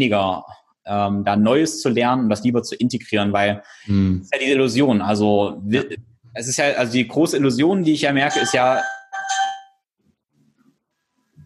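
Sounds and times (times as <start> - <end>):
speech: 0.0 - 9.0
single bright bell ring: 8.2 - 9.8.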